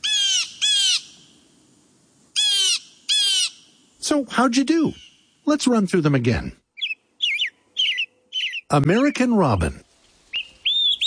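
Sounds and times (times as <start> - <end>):
blue jay calls: 0.0 - 1.4, 2.4 - 3.8, 4.9 - 5.4, 6.7 - 9.1, 10.3 - 11.0
speech: 4.1 - 6.6, 8.7 - 9.9.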